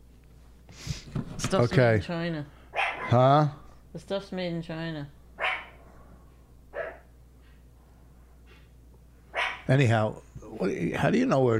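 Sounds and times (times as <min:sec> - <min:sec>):
low steady hum: 0:00.0 - 0:11.5
speech: 0:01.5 - 0:05.2, 0:09.7 - 0:11.5
dog barking in short sharp yaps: 0:02.7 - 0:03.2, 0:05.4 - 0:05.8, 0:06.7 - 0:07.1, 0:09.3 - 0:09.7.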